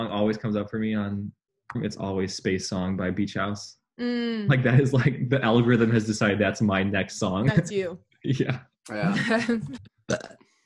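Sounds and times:
voice or laughter: 0.0s - 3.7s, 4.5s - 9.8s
speech: 0.0s - 10.4s
loud drawn-out burp: 10.1s - 10.4s.

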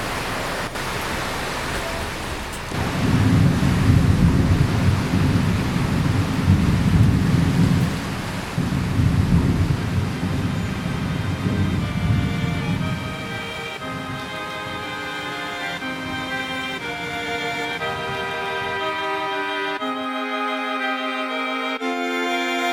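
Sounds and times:
heavy rain: 0.0s - 22.7s
deep rolling low rumble: 2.7s - 14.9s.

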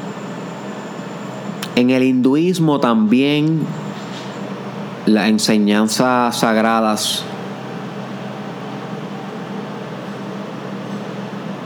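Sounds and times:
tow truck engine droning outside a house: 0.0s - 11.6s
speech: 1.8s - 3.8s, 5.1s - 7.3s.

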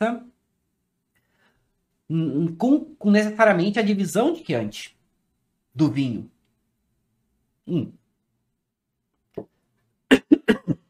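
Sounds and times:
speech: 0.0s - 0.3s, 2.1s - 5.0s, 5.8s - 6.3s, 7.7s - 8.0s
person coughing after choking while talking: 10.1s - 10.8s.

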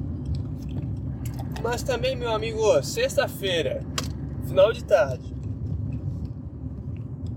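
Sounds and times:
car interior rumble of engine and road noise in heavy traffic: 0.0s - 7.3s
speech: 1.6s - 5.4s.

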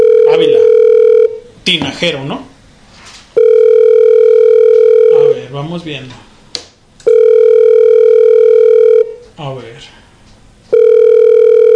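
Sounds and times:
ringback tone of an outgoing phone call: 0.0s - 1.4s, 3.4s - 5.4s, 7.1s - 9.2s, 10.7s - 11.7s
speech: 1.7s - 2.5s, 5.5s - 6.3s, 9.4s - 10.0s.

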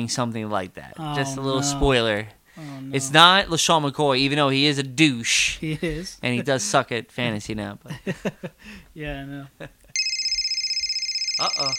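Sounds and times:
speech: 0.0s - 9.8s, 11.4s - 11.7s
telephone ringing with an electronic trill: 10.0s - 11.7s.

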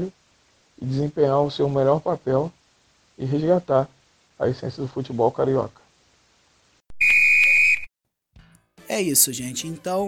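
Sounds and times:
speech: 0.0s - 0.2s, 0.8s - 2.6s, 3.2s - 5.8s, 8.9s - 10.0s
referee's final whistle blast: 7.0s - 7.9s.

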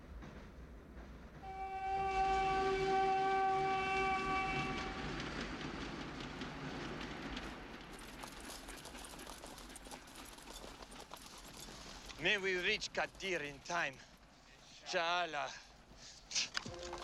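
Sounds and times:
train rumbling along the rails: 0.0s - 14.4s
train horn blast: 1.4s - 5.1s, 16.7s - 17.0s
speech: 12.2s - 14.1s, 14.9s - 15.6s, 16.3s - 16.6s.

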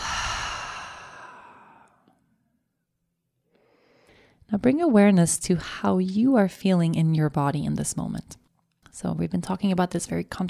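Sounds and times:
person breathing out through the mouth during a guided seated breathing exercise: 0.0s - 2.1s
speech: 4.5s - 8.4s, 9.0s - 10.4s.

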